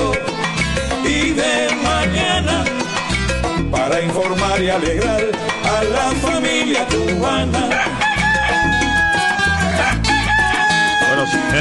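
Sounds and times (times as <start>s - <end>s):
music playing: 0.0s - 11.5s
speech: 3.9s - 8.2s
several roosters crowing: 6.0s - 11.5s.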